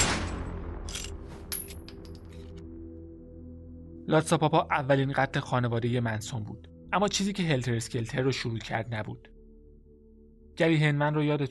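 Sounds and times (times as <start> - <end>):
gunshot echoes: 0.0 - 0.8
gunshot: 0.0 - 0.9
speech: 4.1 - 9.3, 10.6 - 11.4.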